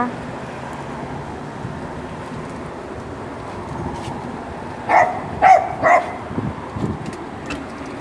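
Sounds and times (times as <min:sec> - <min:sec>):
small dog barking: 0:04.9 - 0:06.2.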